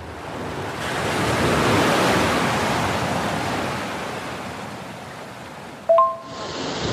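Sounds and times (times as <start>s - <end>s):
Atlantic Ocean waves crashing in very windy weather: 0.0s - 6.9s
brief sharp tonal blip: 5.9s - 6.3s.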